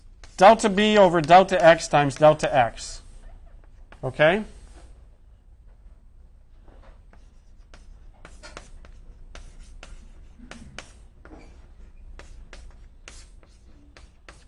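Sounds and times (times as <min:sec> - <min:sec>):
pen scratching while writing an equation by hand: 0:00.2 - 0:02.5, 0:07.1 - 0:14.4
speech: 0:00.4 - 0:03.0, 0:04.0 - 0:04.6.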